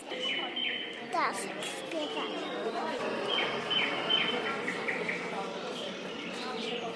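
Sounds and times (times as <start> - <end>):
birds chirping: 0.0 - 6.9
speech: 1.2 - 3.5.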